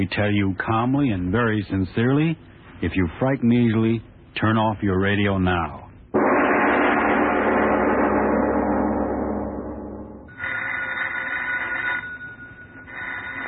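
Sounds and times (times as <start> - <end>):
speech: 0.0 - 5.8
loud swell of sound: 6.2 - 10.4
old telephone bell ringing: 10.3 - 13.4.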